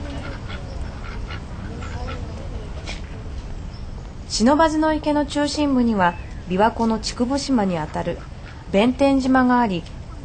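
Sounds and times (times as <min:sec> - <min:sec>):
domestic ducks and wild ducks quacking: 0:00.0 - 0:02.8, 0:07.4 - 0:08.9
steady outdoor murmur on a hot September day: 0:00.0 - 0:10.2
speech: 0:04.3 - 0:10.2.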